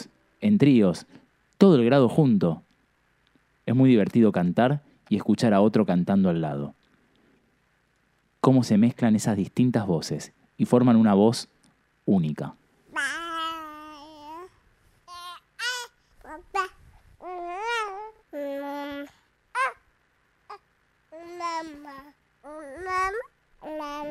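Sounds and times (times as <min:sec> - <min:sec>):
speech: 0:00.4 - 0:02.7, 0:03.7 - 0:06.8, 0:08.4 - 0:13.1
baby babbling its first word-like sounds: 0:12.9 - 0:19.9, 0:20.5 - 0:24.0.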